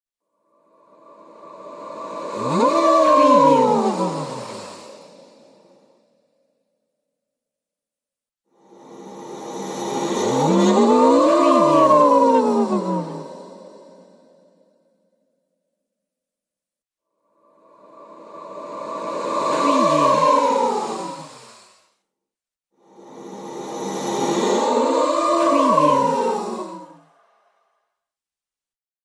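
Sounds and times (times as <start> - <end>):
ghost sound: 0.5 - 6.1, 8.6 - 14.7, 17.3 - 21.8, 22.8 - 27.8.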